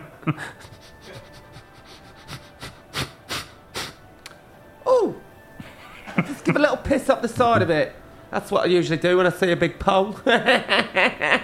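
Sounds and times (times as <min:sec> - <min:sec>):
speech: 0:00.2 - 0:01.2, 0:06.2 - 0:11.4
person imitating a dog sniffing and panting: 0:00.6 - 0:04.0
laughter: 0:05.6 - 0:06.8, 0:10.2 - 0:11.4.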